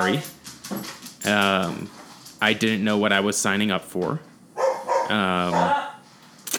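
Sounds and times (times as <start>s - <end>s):
speech: 0.0s - 4.3s, 5.1s - 5.8s
dog barking after being let outside: 4.6s - 6.0s.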